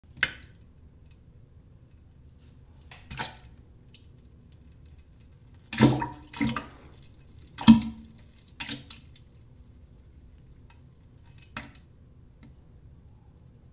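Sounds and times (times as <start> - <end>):
poop splash sound effect: 5.7 - 9.0.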